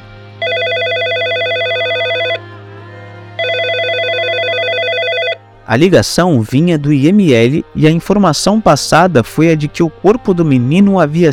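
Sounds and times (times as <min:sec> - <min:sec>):
telephone ringing in long electronic bursts: 0:00.4 - 0:02.4, 0:03.4 - 0:05.4
speech: 0:05.7 - 0:11.3.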